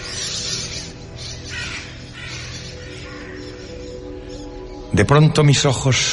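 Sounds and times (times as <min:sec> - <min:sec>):
flock of crows cawing as they circle in the sky: 0:00.0 - 0:04.9
speech: 0:05.0 - 0:06.1.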